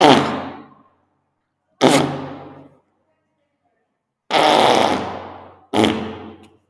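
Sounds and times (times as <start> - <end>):
farts: 0.0 - 0.7, 1.8 - 2.7, 4.3 - 6.6.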